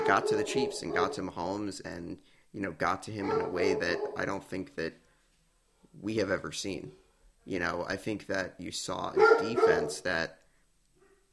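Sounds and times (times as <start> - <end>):
dog barking: 0.0 - 1.4, 3.2 - 4.3, 9.1 - 10.1
speech: 0.1 - 5.0, 6.0 - 10.4.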